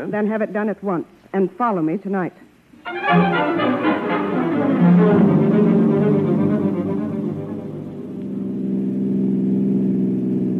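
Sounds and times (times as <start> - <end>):
speech: 0.0 - 4.3
car engine running while driving: 5.1 - 10.5.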